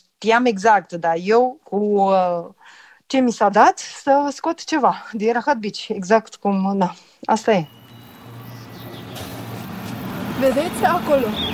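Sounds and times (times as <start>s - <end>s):
speech: 0.0s - 7.8s, 10.4s - 11.5s
road noise: 7.4s - 11.5s
heavy truck engine rumbling on a road: 7.7s - 11.5s.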